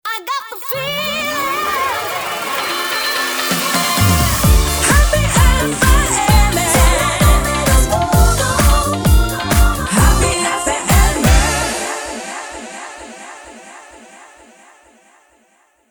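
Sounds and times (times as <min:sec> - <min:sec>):
happy funky music: 0:00.8 - 0:13.3.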